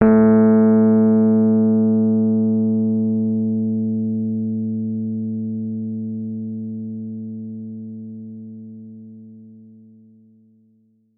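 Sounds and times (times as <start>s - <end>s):
Rhodes electric piano played fortissimo on A2: 0.0s - 4.8s.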